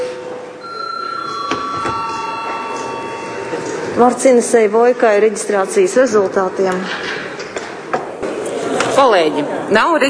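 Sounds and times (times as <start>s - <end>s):
electric bell ringing in a parliament chamber: 0.6s - 4.8s
speech: 4.0s - 7.2s, 9.0s - 10.0s.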